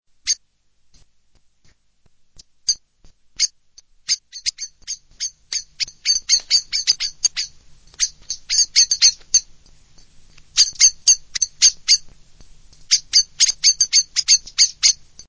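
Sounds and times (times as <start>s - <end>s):
blackbird: 4.1s - 9.5s, 10.6s - 12.1s, 12.8s - 15.0s.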